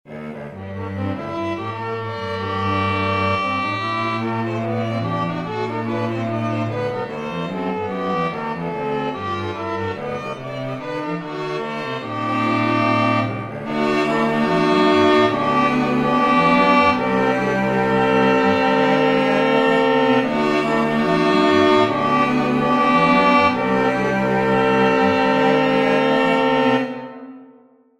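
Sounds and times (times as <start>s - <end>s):
14-EDO microtonal music sketch: 0.3s - 27.2s.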